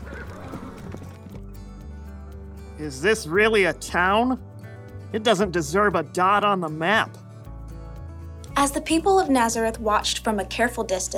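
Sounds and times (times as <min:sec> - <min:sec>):
horse whinnying as it skids to a stop: 0:00.0 - 0:01.4
hooves scuffling as horse halts: 0:00.0 - 0:03.3
speech: 0:02.8 - 0:04.5, 0:05.1 - 0:07.2, 0:08.6 - 0:11.1.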